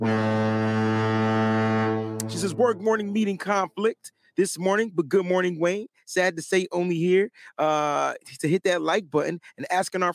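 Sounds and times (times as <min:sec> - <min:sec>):
loud deep foghorn blast: 0:00.0 - 0:02.9
speech: 0:02.4 - 0:10.1.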